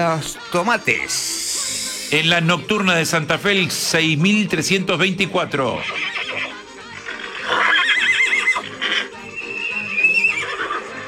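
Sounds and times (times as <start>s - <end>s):
speech: 0.0s - 1.4s, 2.1s - 6.2s
horse neighing: 5.5s - 11.0s.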